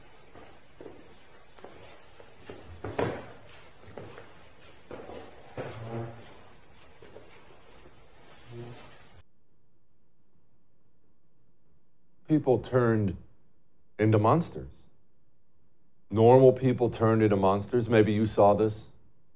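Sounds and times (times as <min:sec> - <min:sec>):
chairs scraping and clunking as they are moved back into place: 0:00.0 - 0:09.2
speech: 0:12.3 - 0:13.2, 0:14.0 - 0:14.8, 0:16.1 - 0:18.9.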